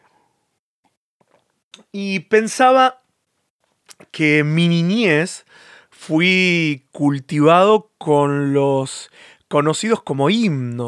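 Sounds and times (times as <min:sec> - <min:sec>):
person sipping water: 0:01.2 - 0:01.6
speech: 0:01.8 - 0:03.0, 0:04.2 - 0:10.8.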